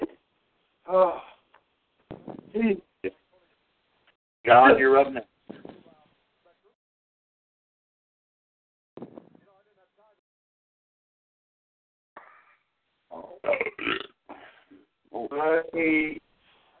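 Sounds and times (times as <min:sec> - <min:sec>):
speech: 0:00.9 - 0:01.3, 0:02.6 - 0:03.2, 0:04.4 - 0:05.3, 0:15.2 - 0:16.2
loud drawn-out belches: 0:13.2 - 0:14.2.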